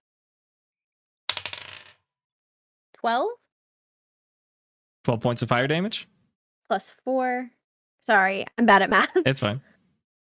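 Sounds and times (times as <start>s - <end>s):
dice clattering across a hard tabletop: 1.3s - 2.0s
speech: 3.0s - 3.4s, 5.0s - 6.1s, 6.7s - 9.7s.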